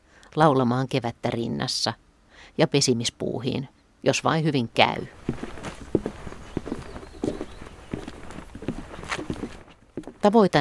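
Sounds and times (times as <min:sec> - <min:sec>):
outdoor ambience: 0:00.0 - 0:10.6
speech: 0:00.3 - 0:05.6, 0:10.2 - 0:10.6
footsteps on hollow wooden duckboard path: 0:05.0 - 0:10.4.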